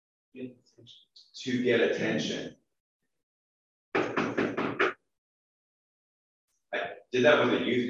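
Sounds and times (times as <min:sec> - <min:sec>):
speech: 0:00.4 - 0:02.6, 0:06.7 - 0:07.8
knocking on wood: 0:04.0 - 0:04.9.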